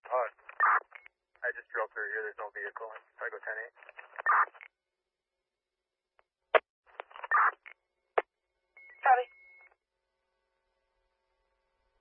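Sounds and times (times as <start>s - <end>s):
brief garbled dispatch radio voices: 0.0s - 4.6s, 7.0s - 7.7s
rescue dispatch radio transmission bursts: 0.1s - 1.0s, 4.0s - 4.6s, 7.0s - 7.7s
sharp dispatch radio clicks: 0.3s - 1.0s, 3.7s - 4.7s, 6.6s - 7.7s
speech: 1.9s - 4.7s.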